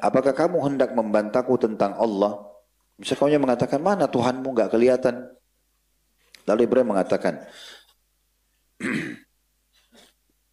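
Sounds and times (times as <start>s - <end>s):
speech: 0.0s - 5.4s, 6.4s - 7.8s, 8.8s - 9.2s
stifled sneeze: 8.8s - 10.2s.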